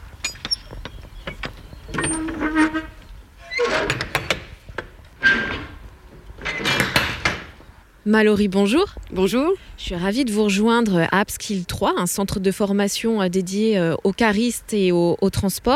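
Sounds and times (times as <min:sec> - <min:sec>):
heavy metal rear doors of a semi-trailer truck being unlatched and opened: 0:01.3 - 0:05.8, 0:06.4 - 0:07.6
speech: 0:02.1 - 0:03.0, 0:08.1 - 0:15.7.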